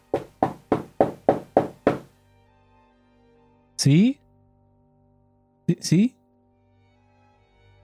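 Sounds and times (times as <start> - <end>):
knocking on a wooden door: 0.0 - 2.1
speech: 3.8 - 4.2, 5.8 - 6.2.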